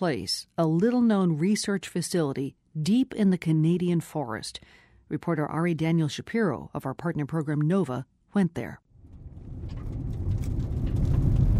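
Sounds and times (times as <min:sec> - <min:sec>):
speech: 0:00.0 - 0:08.8
car engine rumble on a twisting gravel road in western Ontario: 0:09.0 - 0:11.5.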